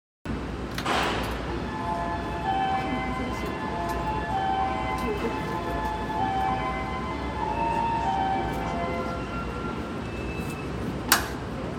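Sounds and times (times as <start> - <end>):
train sounds on the Utsunomiya Line south of Oku: 0.3 - 11.7.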